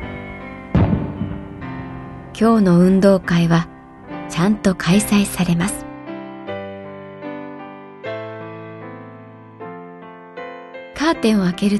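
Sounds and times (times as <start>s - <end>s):
firework bang: 0.7s - 2.1s
low rumble of a firework: 0.7s - 2.8s
speech: 2.4s - 3.7s, 4.3s - 5.8s, 11.1s - 11.7s.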